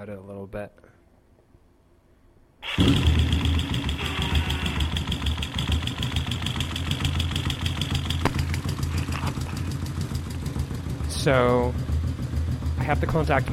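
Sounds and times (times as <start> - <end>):
speech: 0.0 - 0.9, 2.7 - 3.2, 11.2 - 11.8, 12.8 - 13.5
motor engine cranking and catching: 2.6 - 11.0
motor engine rumbling idle with rhythmic mechanical chatter: 2.6 - 13.5.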